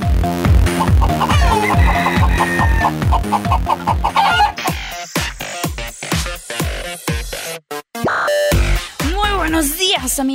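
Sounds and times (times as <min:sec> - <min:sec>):
bouncy rhythmic music bed with percussive beats: 0:00.0 - 0:10.3
rooster crowing and clucking: 0:00.8 - 0:04.8.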